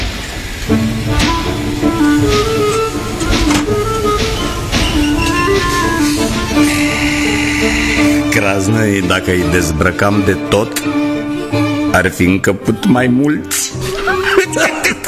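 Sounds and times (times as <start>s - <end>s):
departing train wagons clanking and rumbling over the rails: 0.0s - 8.8s
speech: 0.7s - 1.3s, 8.4s - 11.0s, 12.0s - 15.0s
metallic squealing of train wagons: 0.7s - 8.8s
laughter: 13.9s - 15.0s.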